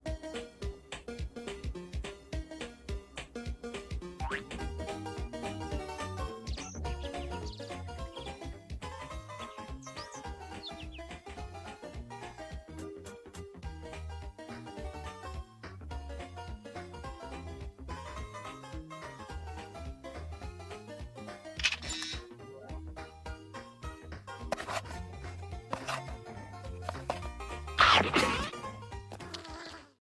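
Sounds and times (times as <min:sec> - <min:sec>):
ground background music: 0:00.0 - 0:29.4.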